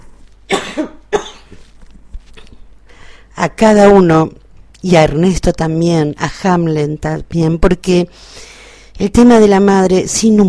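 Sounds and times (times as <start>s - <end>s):
low steady hum: 0.0s - 10.4s
woman coughing: 0.5s - 1.6s
speech: 0.8s - 1.0s, 3.4s - 10.4s.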